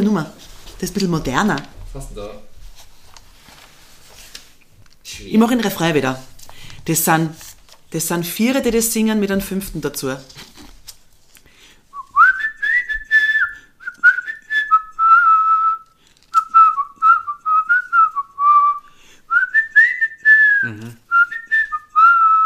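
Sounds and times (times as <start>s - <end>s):
speech: 0.0s - 2.5s, 5.1s - 10.6s
person whistling a tune: 11.9s - 22.4s.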